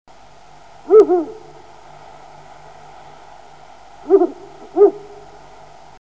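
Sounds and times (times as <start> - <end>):
Ural owl calling: 0.8 - 1.7, 4.0 - 5.4.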